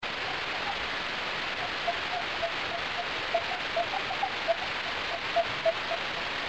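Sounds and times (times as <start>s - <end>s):
common noctule bat calls transposed: 0.1s - 0.8s, 1.5s - 6.3s.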